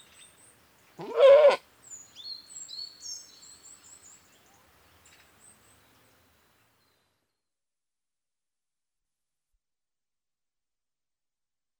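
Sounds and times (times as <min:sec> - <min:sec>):
British goat bleating: 0:01.0 - 0:01.6.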